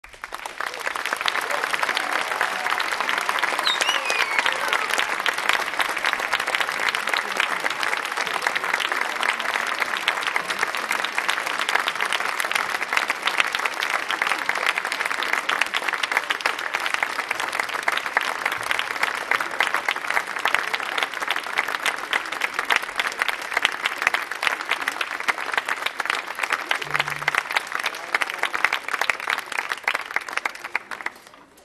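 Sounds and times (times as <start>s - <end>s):
applause: 0.0s - 31.6s
orchestra playing a finale: 26.8s - 27.4s.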